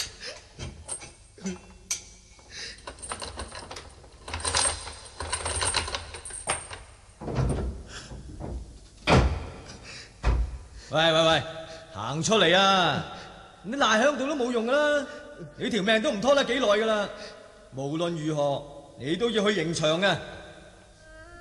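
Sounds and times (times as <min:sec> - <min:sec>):
speech: 0:01.4 - 0:01.6, 0:10.9 - 0:11.5, 0:12.1 - 0:20.4
prison cell door being unlocked and opened: 0:02.8 - 0:10.6.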